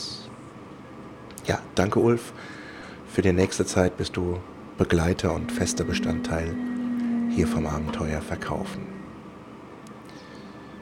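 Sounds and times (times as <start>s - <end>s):
speech: 1.5s - 2.6s, 3.2s - 6.7s, 7.4s - 9.0s
faint high whine: 3.9s - 10.8s
moving train interior rumble: 4.8s - 9.9s.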